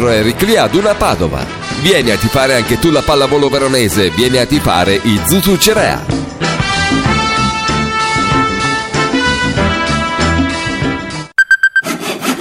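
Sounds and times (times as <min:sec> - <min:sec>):
speech: 0:00.0 - 0:06.2
music: 0:00.0 - 0:11.4
hand saw sawing through firewood: 0:11.8 - 0:12.4.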